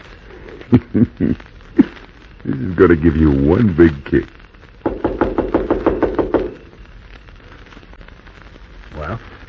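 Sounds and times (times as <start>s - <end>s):
speech: 0.7s - 4.4s
knocking on a door: 4.8s - 6.6s.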